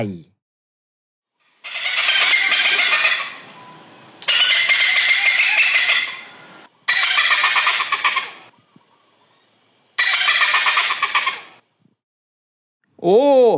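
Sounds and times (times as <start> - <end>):
speech: 0.0 - 0.3, 13.0 - 13.5
hornbill calling: 1.5 - 11.6.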